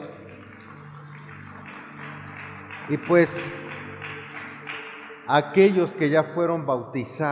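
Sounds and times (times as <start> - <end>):
audience applauding: 0.0 - 5.8
speech: 2.9 - 3.6, 5.3 - 7.3.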